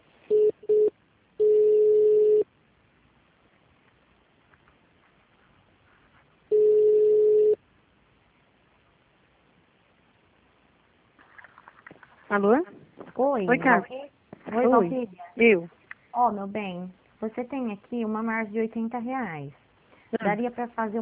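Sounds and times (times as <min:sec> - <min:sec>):
telephone line beeps during hospital call transfer: 0:00.3 - 0:02.4, 0:06.5 - 0:07.6
speech: 0:12.4 - 0:19.6, 0:20.2 - 0:21.0.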